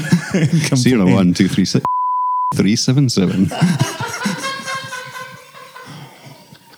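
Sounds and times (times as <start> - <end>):
laughter: 0.0 - 1.9, 2.6 - 6.7
speech: 0.4 - 1.9, 2.5 - 4.3
censor beep over spoken phone number: 1.9 - 2.5.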